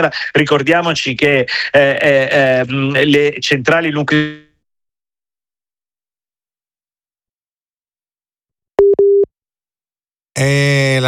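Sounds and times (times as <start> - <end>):
speech: 0.0 - 4.4, 10.4 - 11.0
telephone busy tone beeps after call drops: 8.8 - 9.3.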